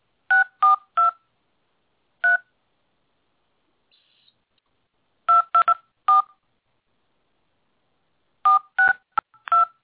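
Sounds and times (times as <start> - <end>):
telephone keypad dual-tone beeps as a host PIN is entered on a call-in line: 5.3 - 6.3, 8.5 - 9.8.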